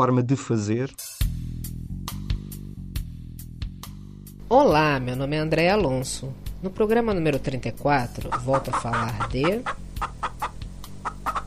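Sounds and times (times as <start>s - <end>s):
speech: 0.0s - 1.2s, 4.5s - 10.2s
chicken clucking: 8.2s - 11.4s.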